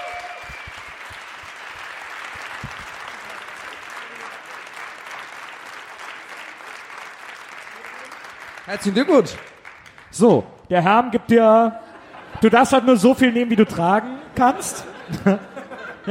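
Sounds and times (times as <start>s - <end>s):
live audience applause: 0.0s - 10.2s
speech: 8.7s - 9.5s, 10.2s - 11.8s, 12.4s - 16.0s
laughter: 11.6s - 16.0s.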